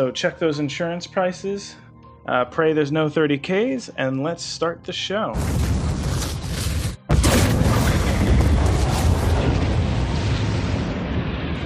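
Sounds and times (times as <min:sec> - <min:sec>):
speech: 0:00.0 - 0:05.8
heavy sci-fi spaceship cannon blast, game sound effect: 0:05.4 - 0:11.6
long dense rumbling boom: 0:05.4 - 0:11.6.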